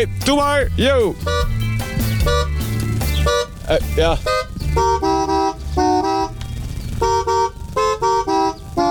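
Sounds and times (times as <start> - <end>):
speech: 0.0 - 1.6, 3.7 - 5.4
car horn honking a tune: 1.1 - 8.9.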